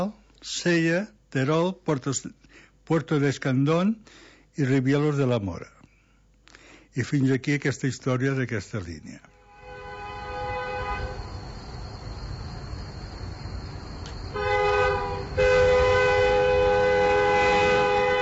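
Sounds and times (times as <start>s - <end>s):
speech: 0.0s - 5.8s, 7.0s - 9.3s
train horn blast: 9.3s - 11.6s, 14.3s - 18.2s
train rumbling along rails past a level crossing: 9.6s - 18.2s.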